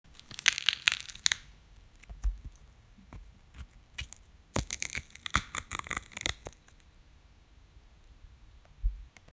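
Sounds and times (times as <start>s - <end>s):
small crunchy bite: 0.1s - 2.1s, 4.0s - 6.8s.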